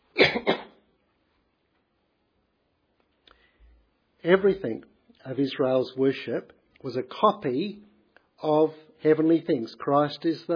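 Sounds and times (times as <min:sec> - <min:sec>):
person clearing throat: 0:00.1 - 0:00.8
speech: 0:04.2 - 0:10.5.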